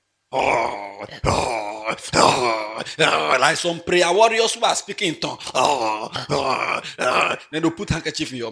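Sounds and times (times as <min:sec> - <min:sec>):
speech: 0:00.3 - 0:08.5
voice imitating loud snoring: 0:00.4 - 0:03.5, 0:05.4 - 0:07.6.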